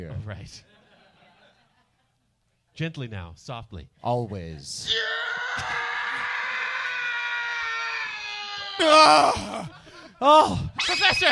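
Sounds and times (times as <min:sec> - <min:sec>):
speech: 0:00.0 - 0:00.7, 0:02.8 - 0:05.8, 0:08.8 - 0:11.2
man screaming loudly: 0:04.8 - 0:11.2.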